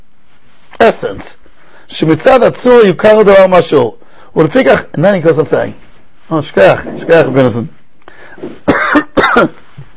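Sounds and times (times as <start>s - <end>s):
speech: 0.8s - 9.6s
throat clearing: 8.4s - 9.6s
man coughing during a religious text study session: 8.4s - 9.7s.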